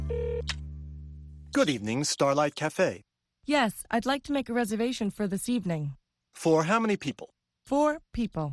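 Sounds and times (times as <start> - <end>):
telephone ringing: 0.1 - 0.6
speech: 1.6 - 8.5.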